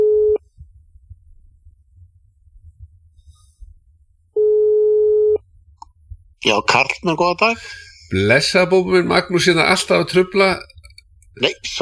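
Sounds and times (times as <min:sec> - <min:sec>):
telephone ringback tone on a radio call-in line: 0:00.0 - 0:00.4, 0:04.4 - 0:05.4
speech: 0:06.4 - 0:10.7, 0:11.4 - 0:11.8.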